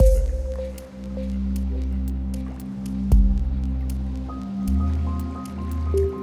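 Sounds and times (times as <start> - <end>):
wistful synth pads: 0.0 - 6.2.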